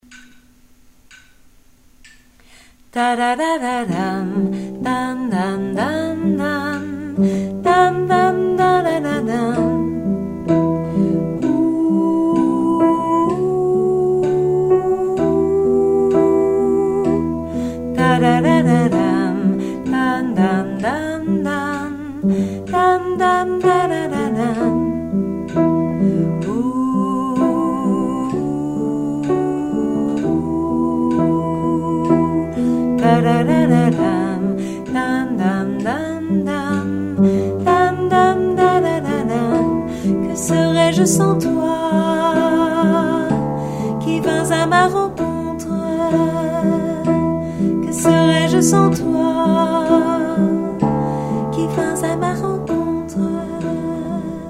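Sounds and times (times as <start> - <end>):
alto voice singing: 2.9 - 54.4.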